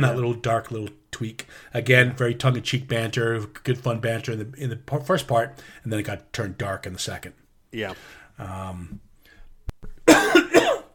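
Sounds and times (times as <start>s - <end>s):
speech: 0.0s - 9.1s
person coughing loudly: 10.1s - 10.9s.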